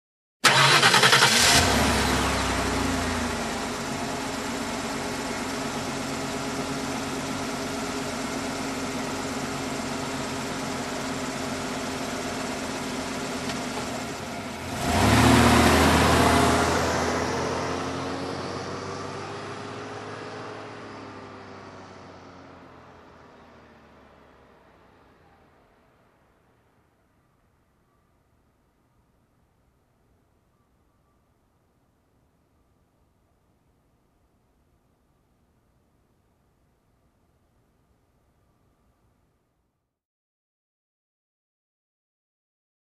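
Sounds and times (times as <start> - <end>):
car engine ignition: 0.4 - 25.8.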